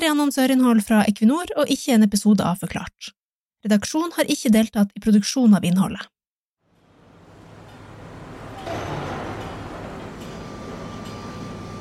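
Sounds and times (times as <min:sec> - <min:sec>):
speech: 0:00.0 - 0:06.2
dense continuous industrial machinery rumble: 0:06.7 - 0:11.7.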